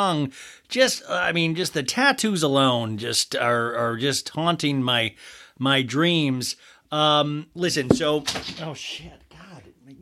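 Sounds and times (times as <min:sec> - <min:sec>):
speech: 0:00.0 - 0:09.2, 0:09.9 - 0:10.0
object knocked off a table: 0:07.9 - 0:08.6.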